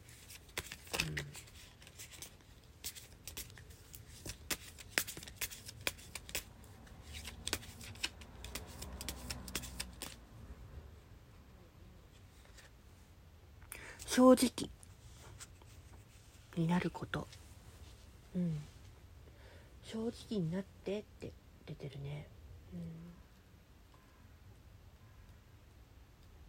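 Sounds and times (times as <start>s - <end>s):
fortune cards being shuffled: 0.1s - 10.2s
speech: 14.2s - 14.8s, 16.6s - 17.4s, 18.4s - 18.7s, 19.9s - 23.2s.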